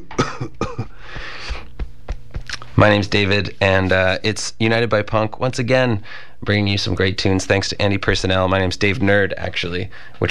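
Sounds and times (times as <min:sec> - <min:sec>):
throat clearing: 0:00.0 - 0:01.7
speech: 0:02.8 - 0:10.2.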